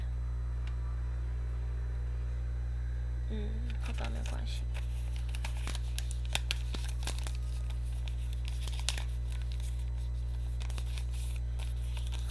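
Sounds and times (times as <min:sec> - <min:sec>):
low steady hum: 0:00.0 - 0:12.2
speech: 0:03.7 - 0:05.0
parcel packaging being torn open: 0:03.7 - 0:12.2.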